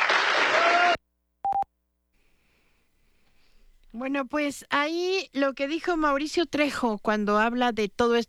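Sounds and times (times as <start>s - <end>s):
audience applause for a municipal water utility award: 0.0s - 1.0s
speech: 3.9s - 8.2s.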